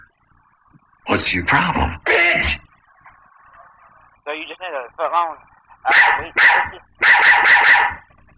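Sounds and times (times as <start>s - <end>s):
speech: 1.1s - 2.6s, 5.0s - 6.8s
puppy yapping high-pitched: 5.9s - 8.1s.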